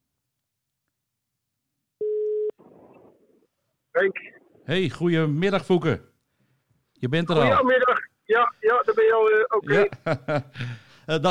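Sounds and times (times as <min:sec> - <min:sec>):
telephone ringback tone on an outgoing call: 0:02.0 - 0:02.5
speech: 0:04.0 - 0:06.1, 0:07.0 - 0:11.2
laughter: 0:09.7 - 0:11.2.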